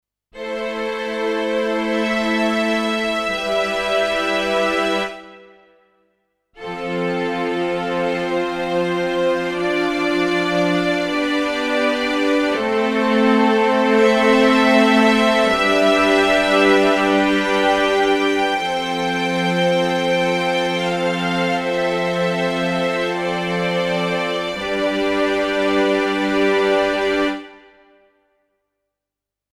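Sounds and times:
Yamaha P S500 keyboard Real Strings: 0:00.4 - 0:05.8, 0:06.6 - 0:27.8.

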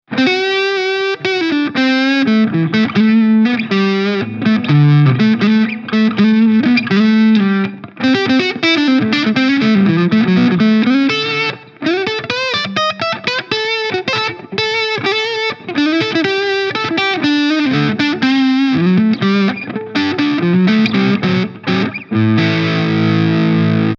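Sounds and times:
Harley Benton SC DLX guitar on neck pickup with gain: 0:00.1 - 0:23.9.

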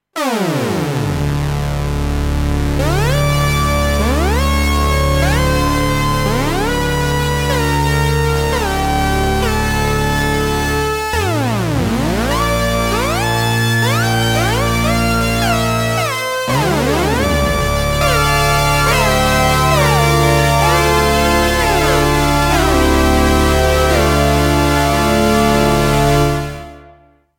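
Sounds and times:
lead synth with pitch envelope: 0:00.2 - 0:27.0.

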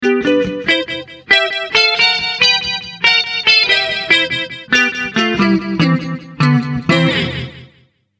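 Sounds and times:
guitar through Boss ME-70 multi-effects on clean setting: 0:00.0 - 0:07.8.

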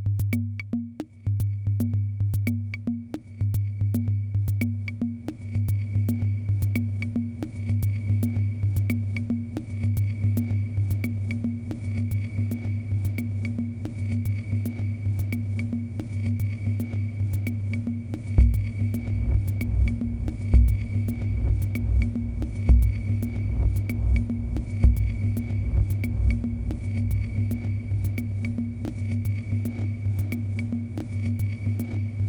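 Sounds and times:
reversed drum machine: 0:00.2 - 0:32.2.

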